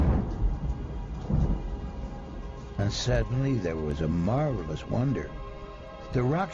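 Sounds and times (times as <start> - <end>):
deep rolling peal of thunder: 0.0 - 3.3
speech: 2.9 - 5.4, 6.1 - 6.5.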